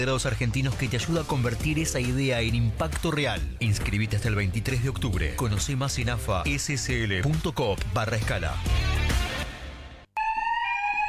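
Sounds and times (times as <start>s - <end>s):
speech: 0.0s - 9.0s
alarm system ringing: 10.2s - 11.0s.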